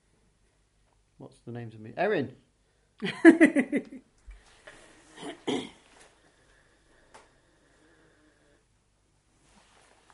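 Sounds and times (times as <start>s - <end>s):
speech: 1.2s - 4.1s
person clearing throat: 5.2s - 5.8s.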